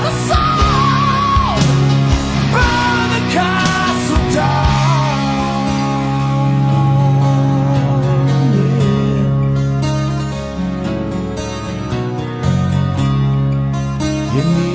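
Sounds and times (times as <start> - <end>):
anguished screams and wailing yells from offstage: 0.0 - 7.8
loud droning music: 0.0 - 14.6.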